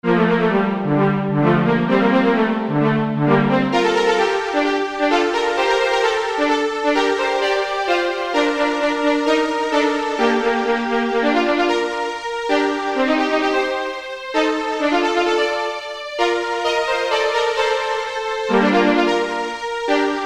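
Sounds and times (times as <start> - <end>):
viola playing a caprice: 0.0 - 20.2.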